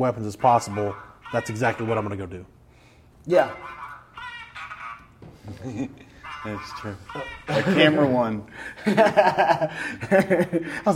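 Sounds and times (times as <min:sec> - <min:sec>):
speech: 0:00.0 - 0:02.6, 0:03.2 - 0:03.8, 0:05.5 - 0:10.9
duck quacking: 0:00.3 - 0:02.4, 0:03.4 - 0:05.2, 0:06.1 - 0:08.2
laughter: 0:04.2 - 0:10.9.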